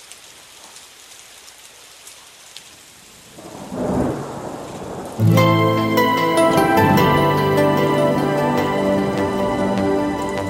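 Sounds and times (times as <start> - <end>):
steady rain falling outside at night: 0.0 - 10.4
music with sustained tones: 5.2 - 10.4.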